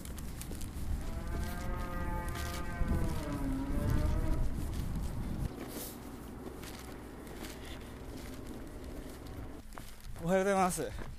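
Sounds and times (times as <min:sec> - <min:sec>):
steady outdoor rumble: 0:00.0 - 0:10.2
cow mooing: 0:01.0 - 0:04.5
speech: 0:10.3 - 0:11.1.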